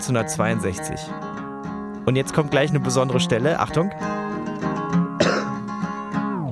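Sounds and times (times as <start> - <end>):
speech: 0.0 - 1.4, 2.1 - 4.4
folk-style music recording with sustained instrumental tones: 0.0 - 6.5
single short cough: 5.2 - 5.7.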